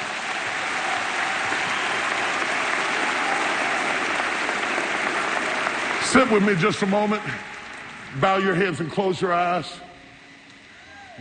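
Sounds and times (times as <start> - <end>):
crowd applause: 0.0 - 8.9
speech: 6.1 - 7.5, 8.1 - 9.8.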